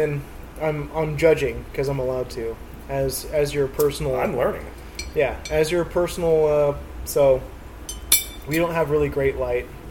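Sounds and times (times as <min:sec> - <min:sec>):
speech: 0:00.0 - 0:07.6, 0:08.5 - 0:09.9
metal pipe tool tapping against ceramic pipe bowl: 0:05.0 - 0:05.7.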